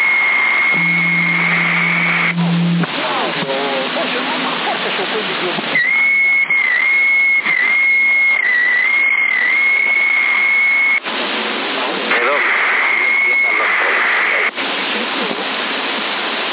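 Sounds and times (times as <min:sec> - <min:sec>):
whistling over a CB radio on the 27 MHz band: 0:00.0 - 0:02.8, 0:05.8 - 0:11.0, 0:12.2 - 0:14.5
constant CB radio hiss and static: 0:00.0 - 0:16.5
low droning tone: 0:00.6 - 0:04.6.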